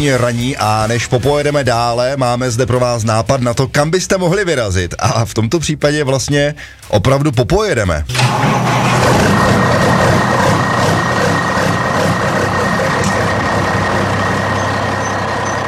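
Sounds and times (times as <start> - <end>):
speech: 0.0 - 10.5
heavy truck engine running: 8.2 - 15.6.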